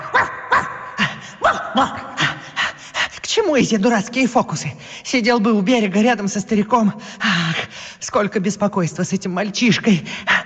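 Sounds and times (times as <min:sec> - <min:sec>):
dog barking: 0:00.0 - 0:01.8
speech: 0:01.8 - 0:02.1, 0:03.4 - 0:10.4.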